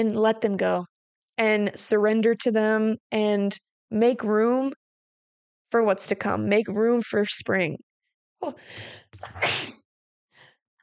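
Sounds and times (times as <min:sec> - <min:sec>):
speech: 0:00.0 - 0:04.8, 0:05.7 - 0:09.8
loud sneeze: 0:09.2 - 0:09.8.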